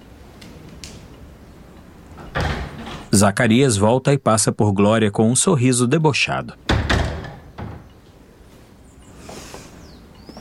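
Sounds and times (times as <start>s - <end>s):
door pushed shut with a solid thud: 2.2s - 3.1s, 6.7s - 7.9s
speech: 3.2s - 6.7s.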